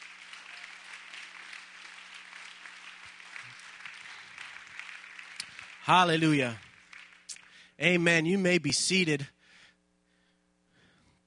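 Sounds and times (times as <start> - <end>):
audience clapping in praise: 0.0 - 8.5
speech: 5.9 - 6.6, 7.8 - 9.4.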